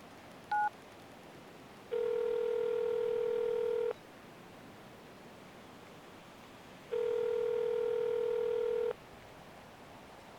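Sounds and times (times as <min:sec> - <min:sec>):
faint hiss: 0:00.0 - 0:10.3
phone keypad beep: 0:00.5 - 0:00.7
phone electronic ringback tone: 0:01.9 - 0:04.0, 0:06.9 - 0:09.0.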